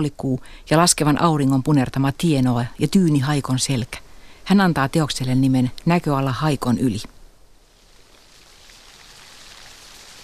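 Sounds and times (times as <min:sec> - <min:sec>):
speech: 0:00.0 - 0:07.2
heavy rain: 0:07.6 - 0:10.2.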